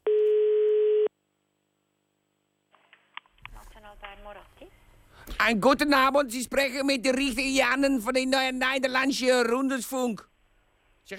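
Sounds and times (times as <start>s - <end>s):
telephone tone while calling restaurants in Switzerland: 0.0s - 1.1s
speech: 4.2s - 10.3s.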